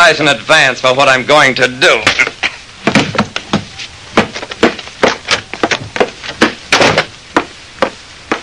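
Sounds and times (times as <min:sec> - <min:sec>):
speech: 0:00.1 - 0:02.3
punches landing as a man is slugged in a dressing room: 0:02.1 - 0:08.4.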